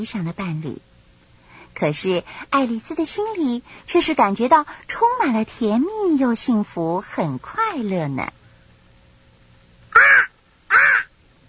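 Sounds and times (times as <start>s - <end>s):
speech: 0.0s - 0.9s, 1.8s - 8.4s
crow cawing: 9.9s - 11.2s.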